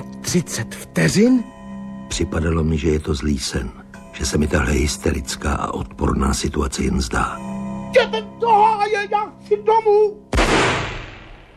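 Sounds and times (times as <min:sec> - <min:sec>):
speech: 0:00.3 - 0:10.2
revolver gunshot: 0:10.3 - 0:11.5.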